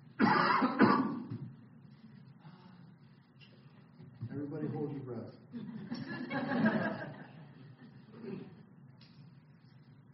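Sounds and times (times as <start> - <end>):
person coughing harshly: 0.2 - 1.3
laughter: 5.5 - 8.6.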